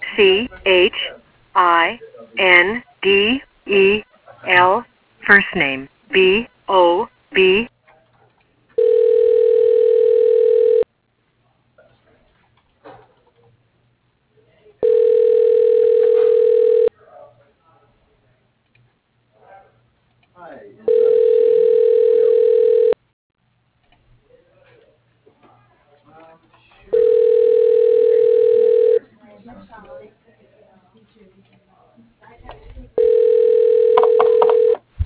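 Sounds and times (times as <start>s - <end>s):
speech: 0.2s - 7.7s
telephone ringback tone of an outgoing call: 8.8s - 10.8s, 14.8s - 16.9s, 20.9s - 23.0s, 27.0s - 29.0s, 33.0s - 34.8s.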